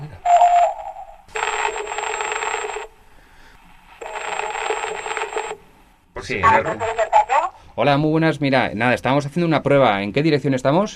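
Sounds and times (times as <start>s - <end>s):
telephone ringing tone as a call connects: 0.0s - 3.0s, 4.0s - 5.8s
speech: 6.3s - 7.1s, 7.8s - 10.9s.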